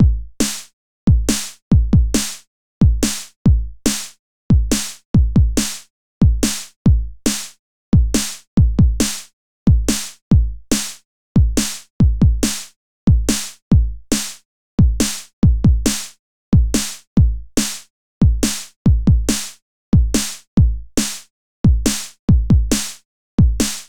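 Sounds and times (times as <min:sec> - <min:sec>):
bass drum: 0:00.0 - 0:07.4, 0:08.0 - 0:09.1, 0:09.7 - 0:10.6, 0:11.4 - 0:14.2, 0:14.8 - 0:16.0, 0:16.6 - 0:19.4, 0:20.0 - 0:23.8
snare drum: 0:00.4 - 0:00.7, 0:01.3 - 0:01.6, 0:02.2 - 0:02.4, 0:03.0 - 0:05.0, 0:05.6 - 0:07.6, 0:11.6 - 0:13.6, 0:14.2 - 0:14.4, 0:15.9 - 0:16.2, 0:16.8 - 0:19.6, 0:20.2 - 0:21.3, 0:21.9 - 0:23.0, 0:23.6 - 0:23.8.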